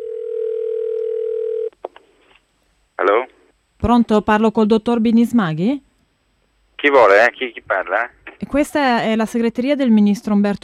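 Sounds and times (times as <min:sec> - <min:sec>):
telephone dial tone before a phone call: 0:00.0 - 0:01.7
speech: 0:03.9 - 0:05.9, 0:06.8 - 0:10.6.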